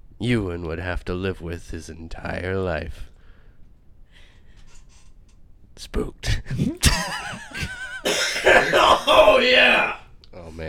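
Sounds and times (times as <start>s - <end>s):
speech: 0.2s - 3.1s, 5.8s - 10.0s
person coughing with a raspy hack: 8.0s - 9.5s.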